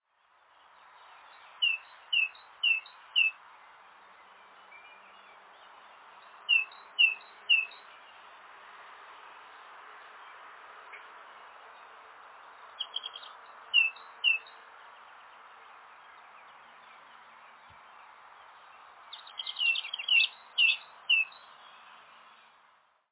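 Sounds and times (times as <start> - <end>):
great tit calling: 6.5 - 7.8, 12.8 - 14.5, 19.1 - 21.8.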